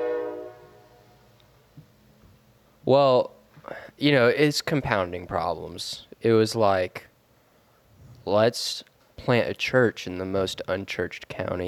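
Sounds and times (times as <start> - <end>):
harmonic train horn blaring: 0.0 - 1.2
speech: 2.9 - 3.4, 4.0 - 7.1, 8.2 - 11.6.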